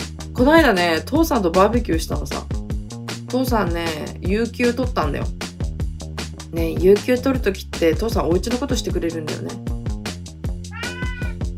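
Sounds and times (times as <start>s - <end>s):
speech: 0.4s - 2.6s, 3.3s - 5.4s, 6.5s - 9.7s
cat meowing: 10.7s - 11.5s.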